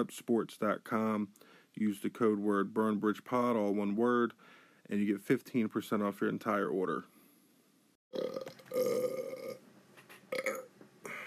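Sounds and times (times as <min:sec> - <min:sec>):
speech: 0:00.0 - 0:07.1
long low raspy human burp: 0:08.1 - 0:09.6, 0:10.3 - 0:10.7.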